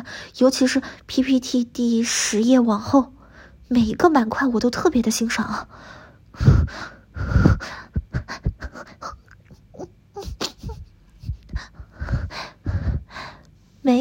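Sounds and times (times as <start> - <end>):
speech: 0.1 - 8.9
heavy panting breaths of a person walking: 5.7 - 9.3, 10.2 - 13.5.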